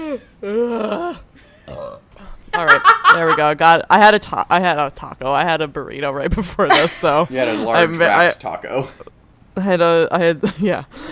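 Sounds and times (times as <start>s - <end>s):
speech: 0.1s - 1.3s, 2.6s - 11.0s
person belching into a microphone: 1.7s - 2.0s
laughter: 2.6s - 3.5s.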